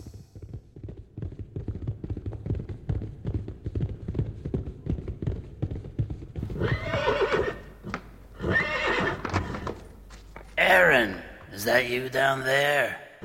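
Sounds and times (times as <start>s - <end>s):
horse hooves clopping: 0.0s - 11.8s
horse whinnying: 6.4s - 9.9s
speech: 11.0s - 13.0s.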